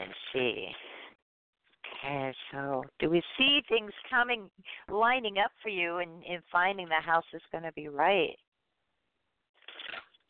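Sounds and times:
speech: 0.1 - 0.8, 2.0 - 8.4
deck of cards being shuffled: 9.6 - 10.2.

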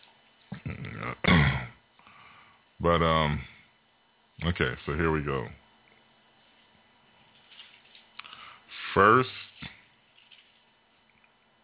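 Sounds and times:
rough throaty coughs: 0.6 - 1.8
speech: 2.8 - 3.5, 4.4 - 5.6, 9.0 - 9.4.

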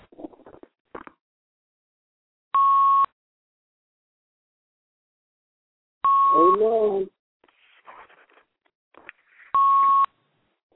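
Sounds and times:
electronic beep from a phone: 2.6 - 3.1, 6.0 - 6.6, 9.5 - 10.1.

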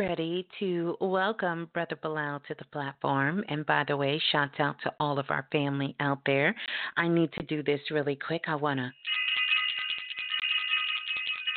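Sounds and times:
speech: 0.0 - 9.3
bell ringing: 9.0 - 11.5.

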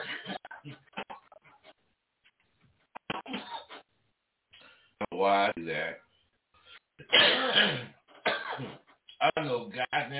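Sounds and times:
person coughing after taking a hit of smoke: 0.0 - 1.1, 3.1 - 3.8, 7.1 - 8.8
speech: 5.2 - 6.0.

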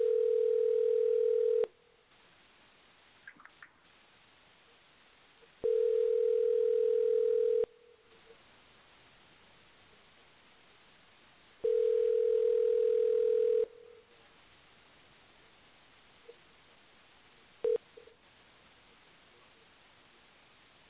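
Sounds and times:
telephone ringback tone in long steady bursts: 0.0 - 1.7, 5.6 - 7.7, 11.6 - 13.8.

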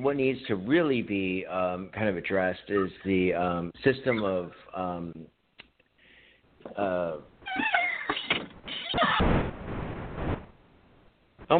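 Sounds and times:
speech: 0.0 - 5.4, 6.6 - 9.5
door squeaking: 7.4 - 9.3.

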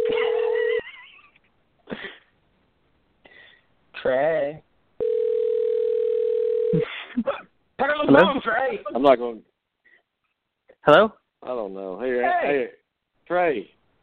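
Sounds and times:
outgoing phone call ringback tones: 0.0 - 0.8, 5.0 - 6.8
speech: 4.1 - 4.7, 8.1 - 9.5, 10.8 - 13.8.

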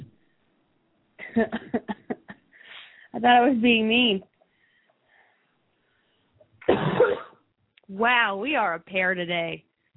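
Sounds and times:
speech: 1.4 - 2.0, 3.1 - 4.3, 7.9 - 9.7
harsh rough cough from a person with trouble breathing: 6.6 - 7.4.

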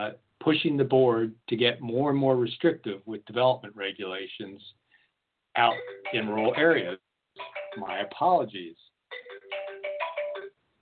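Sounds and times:
speech: 0.0 - 4.8, 5.6 - 9.3
mobile phone ringtone with bright electronic melody: 5.6 - 8.2, 9.1 - 10.6.

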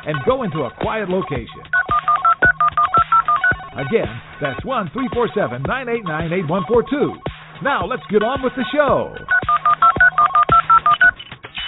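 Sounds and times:
speech: 0.0 - 1.8, 3.8 - 9.4
telephone keypad dialing beeps: 1.7 - 3.9, 9.3 - 11.6.

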